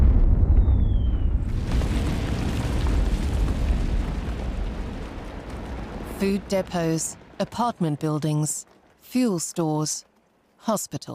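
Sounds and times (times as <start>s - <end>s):
heavy artillery bombardment of a city: 0.0s - 7.4s
speech: 6.2s - 11.1s.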